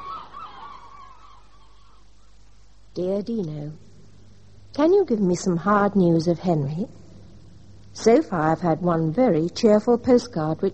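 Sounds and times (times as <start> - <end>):
flock of geese honking: 0.0 - 2.0
speech: 3.0 - 3.9, 4.7 - 7.0, 8.0 - 10.7.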